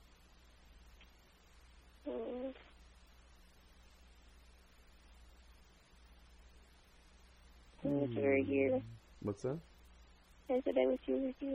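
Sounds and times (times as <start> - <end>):
person on a phone call imitating a cat's purr: 2.1 - 2.7, 7.8 - 9.0
speech: 7.9 - 9.7, 10.5 - 11.5.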